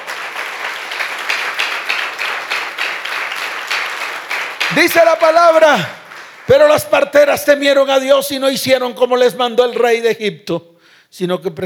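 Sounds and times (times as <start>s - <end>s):
crowd applauding: 0.0s - 7.1s
speech: 4.8s - 11.6s.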